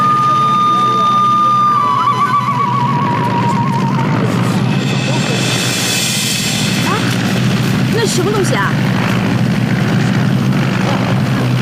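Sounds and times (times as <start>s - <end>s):
propeller-engine airplane passing overhead: 0.0s - 11.5s
speech: 8.2s - 9.0s.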